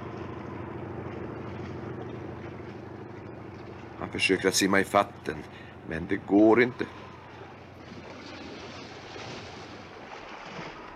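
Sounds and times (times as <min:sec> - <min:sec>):
stormy sea waves churning and surging: 0:00.0 - 0:10.9
wind blowing over the water: 0:00.0 - 0:10.9
speech: 0:04.0 - 0:07.0.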